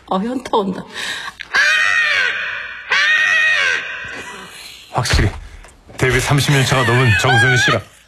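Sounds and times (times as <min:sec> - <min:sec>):
speech: 0:00.1 - 0:01.1, 0:05.0 - 0:05.4, 0:06.0 - 0:07.9
voice imitating crow caws: 0:01.5 - 0:04.2.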